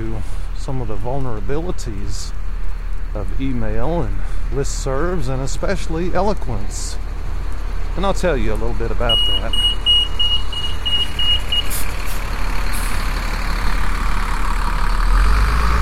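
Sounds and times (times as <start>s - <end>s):
big bus engine idling: 0.0s - 15.7s
speech: 0.2s - 2.4s, 3.1s - 7.1s, 8.0s - 9.7s
kneeling bus warning beeps: 9.0s - 11.8s.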